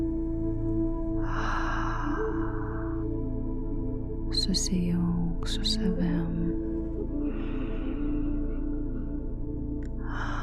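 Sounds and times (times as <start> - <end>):
steady low droning tone: 0.0 - 10.4
deep breathing during a guided breathing exercise: 1.1 - 4.2, 6.8 - 10.4
speech: 4.5 - 6.7.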